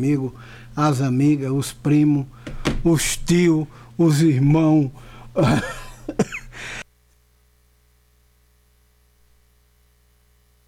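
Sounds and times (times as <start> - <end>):
speech: 0.0 - 6.8
man clearing throat: 5.4 - 6.6.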